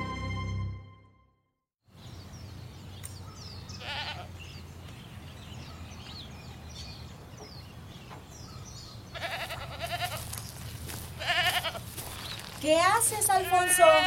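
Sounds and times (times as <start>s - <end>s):
faint birdsong chirps: 1.8s - 11.2s, 11.9s - 14.0s
goats bleating: 3.8s - 4.4s, 9.1s - 12.1s, 13.1s - 14.0s
speech: 12.9s - 14.0s.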